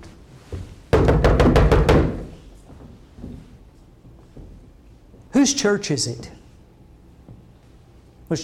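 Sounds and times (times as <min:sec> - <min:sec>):
firm loud knocking on a wooden door: 0:00.9 - 0:02.3
speech: 0:05.4 - 0:06.4.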